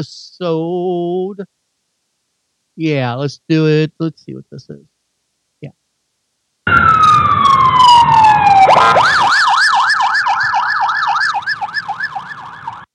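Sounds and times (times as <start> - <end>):
speech: 0.0 - 1.6, 2.8 - 4.9, 8.8 - 9.2
emergency vehicle siren wailing and yelping: 6.7 - 12.9.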